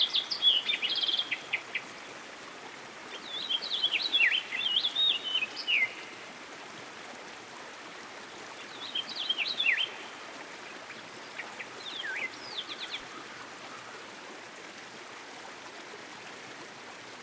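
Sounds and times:
American goldfinch song: 0.0 - 2.2, 3.1 - 6.2, 8.6 - 14.0
hiss of running water in a stream: 0.0 - 17.2.

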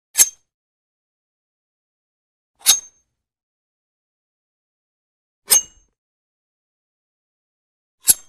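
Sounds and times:
knife drawn fast with metal slide shing: 0.2 - 0.5, 2.6 - 3.1, 5.5 - 5.9, 8.0 - 8.2.

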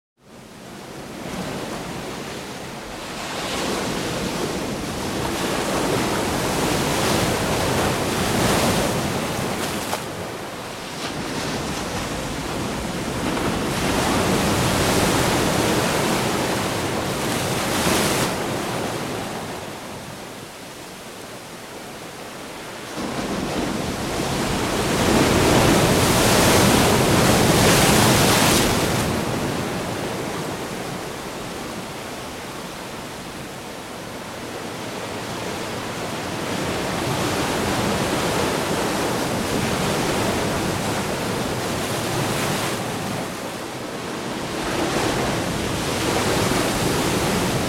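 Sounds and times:
medium size waves crashing and closing out with foam: 1.0 - 20.1, 22.7 - 33.5, 34.3 - 47.6.

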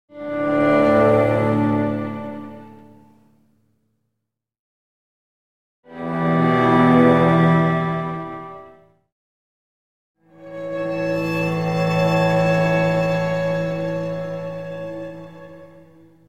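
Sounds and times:
soft violin and cello ending chord in a music transition: 0.1 - 3.4, 5.9 - 8.9, 10.2 - 16.2.

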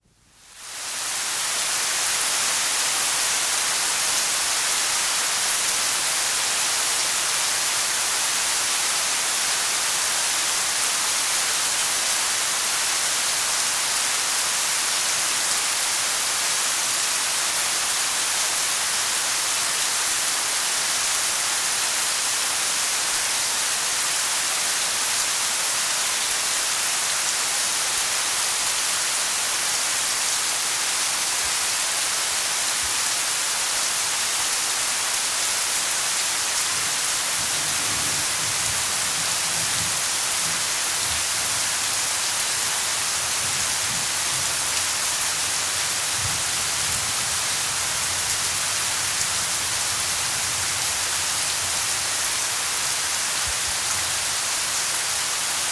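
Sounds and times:
steady hard rain: 0.3 - 55.7.

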